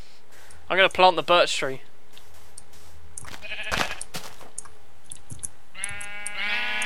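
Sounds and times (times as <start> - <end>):
speech: 0.7 - 1.9
sheep bleating: 3.3 - 4.1, 5.7 - 6.8.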